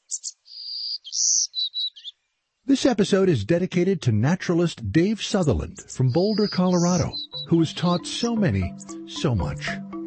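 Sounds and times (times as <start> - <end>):
songbird singing: 0.0 - 2.8, 5.3 - 10.0
speech: 2.7 - 9.8.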